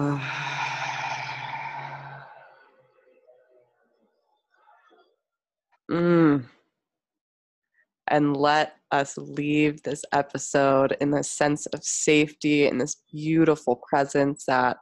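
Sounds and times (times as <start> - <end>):
deep inhale through the nose: 0.2 - 2.6
full breathy exhale through the mouth: 0.2 - 2.6
speech: 8.1 - 14.8.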